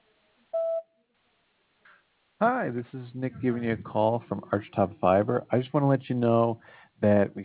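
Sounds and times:
electronic voicemail beep: 0.6s - 0.8s
speech: 2.4s - 7.4s.

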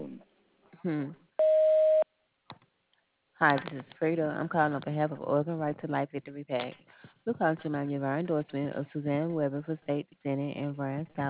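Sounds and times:
speech: 0.8s - 1.2s, 3.4s - 11.2s
answering machine beep: 1.4s - 2.0s.

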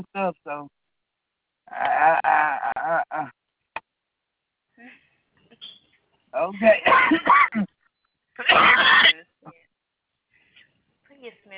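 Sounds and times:
speech: 0.0s - 0.8s, 1.7s - 3.4s, 6.3s - 7.7s
person coughing from smoking: 6.8s - 7.7s, 8.4s - 9.2s.

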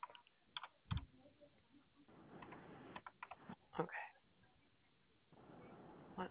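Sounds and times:
typing a code on a computer keyboard: 0.0s - 1.1s, 2.4s - 3.4s
faint hiss: 0.0s - 6.2s.

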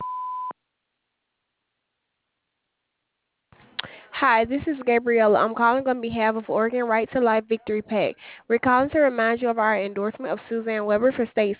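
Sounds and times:
electronic answering machine beep: 0.0s - 0.5s
speech: 4.2s - 11.5s.

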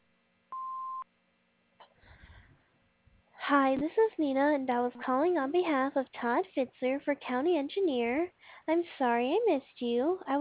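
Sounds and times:
answering machine beep: 0.6s - 1.0s
speech: 3.5s - 10.3s.

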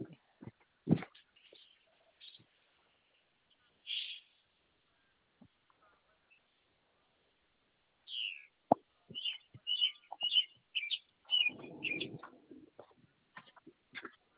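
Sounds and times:
bird calling with voice-like notes, chirps and tweets: 3.9s - 4.3s, 8.1s - 8.5s, 9.2s - 12.7s.

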